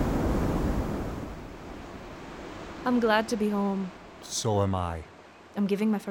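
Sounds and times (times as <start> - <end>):
wind gusts buffeting the microphone: 0.0 - 2.8
strong wind by the sea: 0.0 - 4.2
speech: 2.8 - 6.0.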